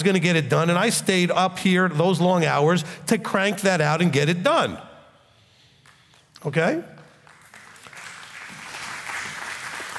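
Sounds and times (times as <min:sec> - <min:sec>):
speech: 0:00.0 - 0:04.9, 0:06.4 - 0:06.9
audience clapping: 0:07.0 - 0:09.9.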